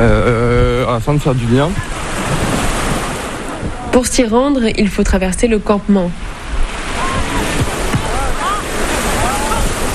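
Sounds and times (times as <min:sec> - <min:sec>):
surf washing onto a black sand beach: 0:00.0 - 0:04.8, 0:05.8 - 0:09.9
wind noise: 0:00.0 - 0:09.9
speech: 0:01.0 - 0:02.4, 0:03.9 - 0:06.2.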